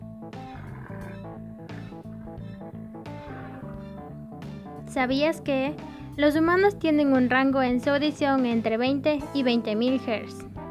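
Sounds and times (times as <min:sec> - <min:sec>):
lion roaring: 0:00.3 - 0:04.7
speech: 0:04.9 - 0:10.5.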